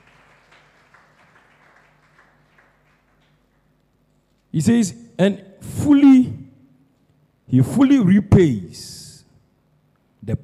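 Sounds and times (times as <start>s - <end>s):
church audience clapping: 0.0s - 3.9s
speech: 4.5s - 6.2s, 7.5s - 9.0s, 10.3s - 10.4s.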